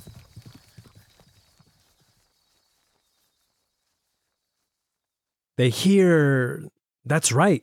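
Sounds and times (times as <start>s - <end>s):
horse hooves clip-clopping: 0.0s - 5.3s
speech: 5.6s - 7.6s.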